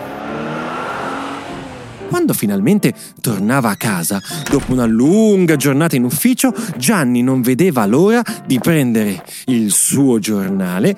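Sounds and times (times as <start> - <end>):
blue car engine revving and driving off: 0.0 - 2.2
speech: 2.1 - 10.9.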